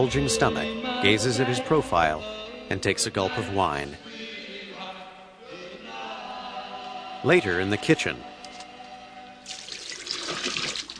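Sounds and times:
speech: 0.0 - 4.2, 7.2 - 8.3
formula bottles emptied into a kitchen sink: 9.5 - 10.9.

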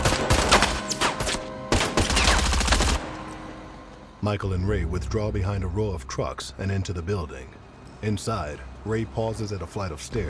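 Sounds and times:
gunfire exchange in a shootout at a meatpacking plant's loading dock: 0.0 - 3.1
speech: 4.2 - 10.2.

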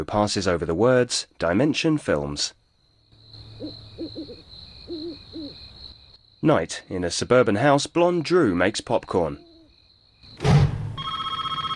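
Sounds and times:
speech: 0.0 - 2.6, 6.4 - 9.5
cordless telephone ringing at night in a suburban house: 11.0 - 11.7.

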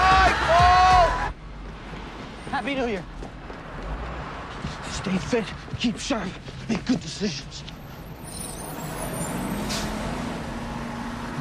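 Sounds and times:
bus engine rumbling while pulling up: 0.0 - 11.3
speech: 2.6 - 3.3, 5.0 - 7.7
bus air brakes hissing: 7.9 - 10.1.

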